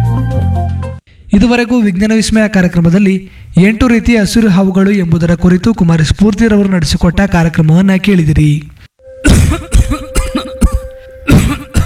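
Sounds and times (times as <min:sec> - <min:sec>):
speech: 0:01.3 - 0:09.4
man coughing deeply and persistently: 0:09.2 - 0:11.8.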